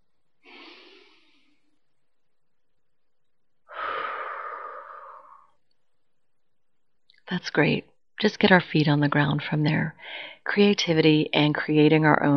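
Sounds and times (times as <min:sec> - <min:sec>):
deep breaths during a guided relaxation exercise: 0:00.4 - 0:01.8, 0:03.7 - 0:05.6, 0:10.0 - 0:10.4
speech: 0:07.3 - 0:12.3.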